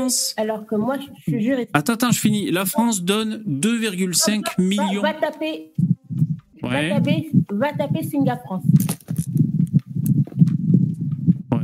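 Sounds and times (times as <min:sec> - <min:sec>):
speech: 0:00.0 - 0:05.9, 0:06.7 - 0:09.0
laughter: 0:03.8 - 0:05.4
low rumbling interference noise on a phone line: 0:05.7 - 0:11.6
soft thumps: 0:05.8 - 0:11.5
crackling bursts: 0:05.8 - 0:11.6.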